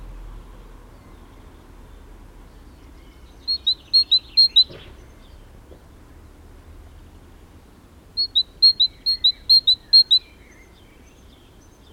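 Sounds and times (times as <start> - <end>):
Great tit Parus major singing two-note pairs: 3.4 - 4.8, 8.2 - 11.0.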